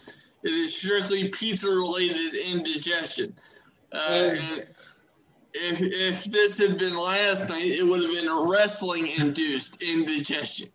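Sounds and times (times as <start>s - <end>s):
speech: 0.0s - 4.9s, 5.5s - 10.7s
person clearing throat with a rough cough-like edge: 4.0s - 4.6s.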